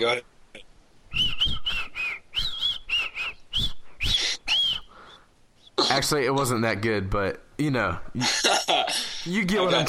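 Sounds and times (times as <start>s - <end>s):
speech: 0.0s - 0.3s, 5.9s - 9.8s
person whistling a song's melody: 1.1s - 4.9s
person breathing between whistled phrases: 3.8s - 5.4s.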